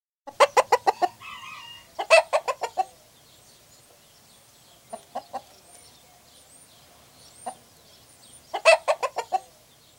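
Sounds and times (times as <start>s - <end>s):
hen cackling: 0.3s - 3.0s, 8.5s - 9.5s.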